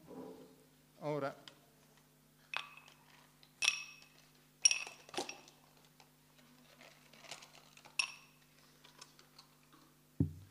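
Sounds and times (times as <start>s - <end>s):
drinking glass clinking: 2.6s - 3.0s, 3.6s - 5.6s, 8.0s - 8.4s
low thud: 10.2s - 10.4s.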